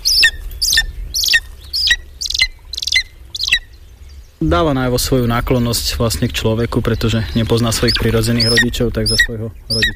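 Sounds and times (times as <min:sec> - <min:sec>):
lesser spotted eagle giving sharp high-pitched yelping calls: 0:00.0 - 0:03.7, 0:07.0 - 0:09.9
low rumble: 0:00.0 - 0:09.9
speech: 0:04.4 - 0:09.9.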